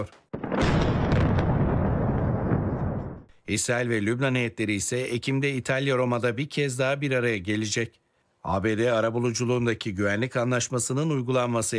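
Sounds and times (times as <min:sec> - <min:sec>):
speech: 0:00.0 - 0:00.8, 0:03.5 - 0:11.7
artillery fire shelling towns in southern Lebanon: 0:00.3 - 0:03.3.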